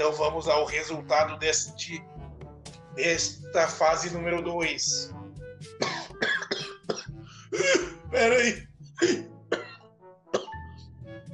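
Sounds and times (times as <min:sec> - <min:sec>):
speech: 0:00.0 - 0:02.2, 0:03.0 - 0:05.2, 0:07.5 - 0:09.2
person coughing: 0:05.8 - 0:08.1, 0:09.0 - 0:09.8, 0:10.4 - 0:10.6
throat clearing: 0:05.8 - 0:09.8, 0:10.4 - 0:10.6.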